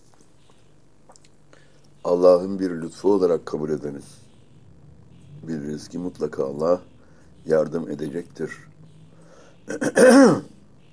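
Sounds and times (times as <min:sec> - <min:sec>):
speech: 0:02.1 - 0:04.2, 0:05.5 - 0:08.7, 0:09.7 - 0:10.5
man clearing his throat: 0:09.7 - 0:10.5.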